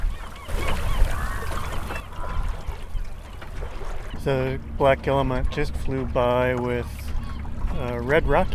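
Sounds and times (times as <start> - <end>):
gull colony squawking on John's Island off Mount Desert Island: 0.0 - 8.5
low rumble of wind or surf: 0.0 - 8.5
speech: 4.2 - 7.0, 7.7 - 8.5.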